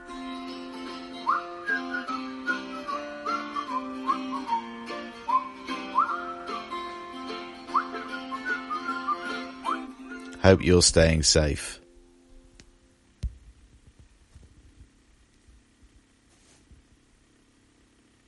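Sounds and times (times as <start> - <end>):
person whistling a lilting melody with sliding pitches: 1.2 - 6.9, 7.6 - 10.4
speech: 10.5 - 11.8.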